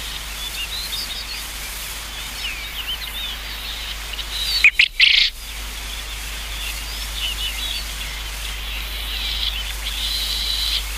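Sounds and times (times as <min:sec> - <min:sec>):
small birds twittering: 0:00.0 - 0:10.9
Japanese quail harsh three-part call: 0:04.6 - 0:05.3.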